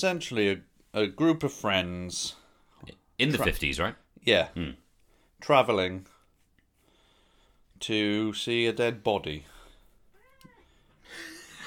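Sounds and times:
speech: 0:00.0 - 0:04.8, 0:05.4 - 0:06.1, 0:07.8 - 0:09.5
domestic cat meowing: 0:10.2 - 0:10.7.

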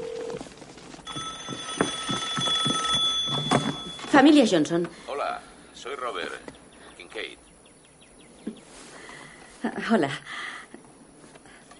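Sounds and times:
telephone bell ringing in a house kitchen: 0:01.1 - 0:04.4
speech: 0:04.2 - 0:07.4, 0:09.7 - 0:10.4.

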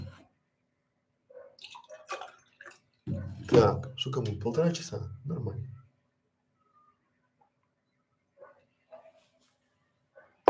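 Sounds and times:
water pouring into a glass: 0:01.6 - 0:02.8
speech: 0:03.5 - 0:05.8.

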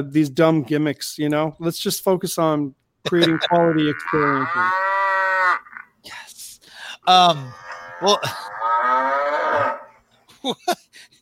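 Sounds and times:
speech: 0:00.0 - 0:04.9, 0:07.1 - 0:08.5, 0:10.4 - 0:10.8
laughter: 0:03.1 - 0:03.9, 0:10.4 - 0:11.1
cow mooing: 0:03.3 - 0:05.9, 0:07.4 - 0:09.9.

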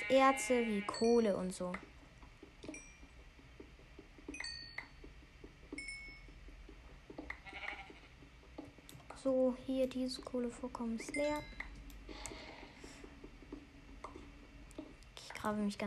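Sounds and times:
sheep bleating with a short wavering cry: 0:00.0 - 0:01.2, 0:07.4 - 0:08.2
speech: 0:00.0 - 0:01.9, 0:09.5 - 0:12.3, 0:15.4 - 0:15.8
soft tapping steps: 0:00.0 - 0:15.8.

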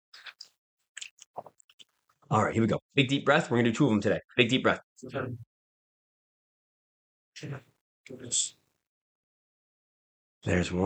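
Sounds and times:
person sipping a drink: 0:00.2 - 0:01.9
wet slurping and swallowing: 0:00.2 - 0:02.0
speech: 0:02.3 - 0:05.5, 0:07.4 - 0:08.6, 0:10.4 - 0:10.8.

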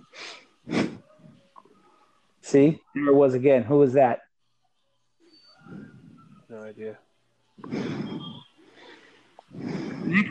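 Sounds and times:
heavy breathy panting: 0:00.0 - 0:01.4, 0:05.6 - 0:06.6, 0:07.6 - 0:10.2
speech: 0:02.5 - 0:04.2, 0:06.7 - 0:07.0, 0:07.6 - 0:08.3, 0:09.6 - 0:10.2.

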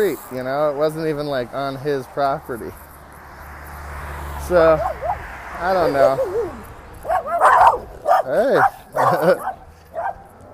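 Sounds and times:
speech: 0:00.0 - 0:02.9, 0:04.5 - 0:06.4, 0:08.2 - 0:09.6
dogs barking fiercely: 0:04.6 - 0:10.5
laughter: 0:08.3 - 0:09.6.

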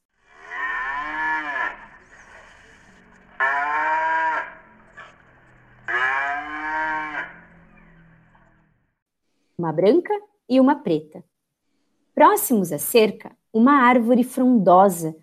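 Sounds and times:
cows mooing in a pasture: 0:00.3 - 0:08.7
speech: 0:09.6 - 0:11.3, 0:12.2 - 0:15.2.

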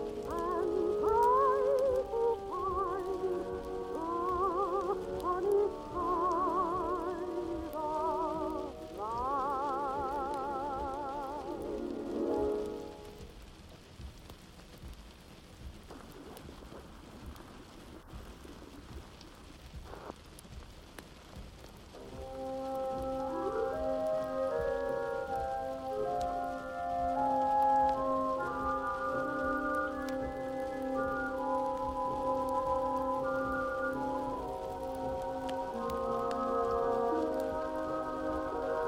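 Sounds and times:
old-time music from the 1920s to 1940s: 0:00.0 - 0:16.6, 0:17.2 - 0:38.8
soft steady fire crackle: 0:00.0 - 0:38.8.

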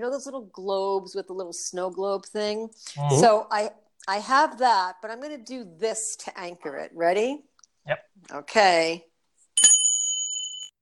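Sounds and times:
speech: 0:00.0 - 0:09.1
Tibetan chime being struck: 0:09.6 - 0:10.7.

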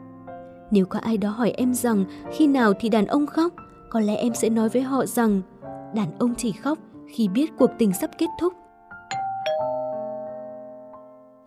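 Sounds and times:
speech: 0:00.7 - 0:08.6
doorbell ding-dong chime: 0:09.1 - 0:11.2.

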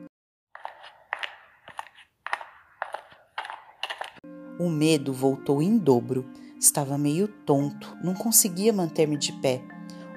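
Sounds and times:
heavy crunching footsteps on gravel or dry leaves: 0:00.6 - 0:04.2
speech: 0:04.6 - 0:10.1.

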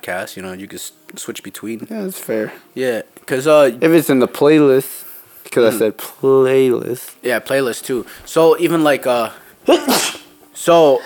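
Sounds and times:
speech: 0:00.0 - 0:11.0
person sneezing loudly: 0:09.6 - 0:10.4.

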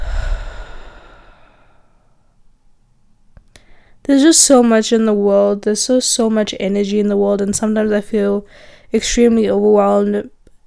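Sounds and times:
deep breath out: 0:00.0 - 0:02.3, 0:03.6 - 0:04.0, 0:08.5 - 0:08.9
speech: 0:04.1 - 0:10.4.

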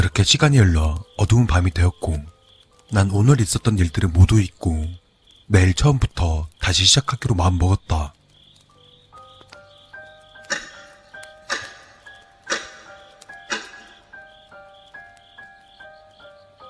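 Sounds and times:
speech: 0:00.1 - 0:02.3, 0:02.9 - 0:08.2
clock ticking in a dark room at night: 0:10.4 - 0:14.2.

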